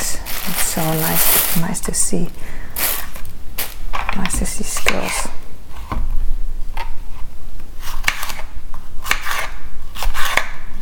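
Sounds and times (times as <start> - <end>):
steady hiss: 0.0 - 9.1
speech: 0.5 - 2.6, 4.2 - 5.4
knife slicing through food with sharp crisp cutting strokes: 7.8 - 10.6.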